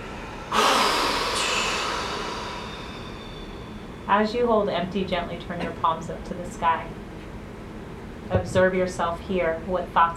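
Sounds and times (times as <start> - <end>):
powerful exhale during a guided breathwork ceremony: 0.0 - 4.0
speech: 4.1 - 7.0, 8.3 - 10.1.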